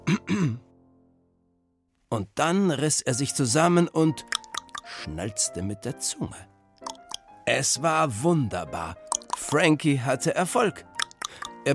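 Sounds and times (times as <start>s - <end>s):
nervous man clearing his throat at an audition: 0.0s - 0.7s
speech: 2.1s - 6.5s, 7.5s - 11.7s.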